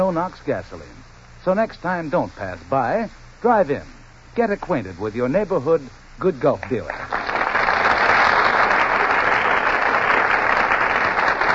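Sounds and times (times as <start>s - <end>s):
speech: 0.0s - 7.3s
studio audience applauding: 6.9s - 11.5s.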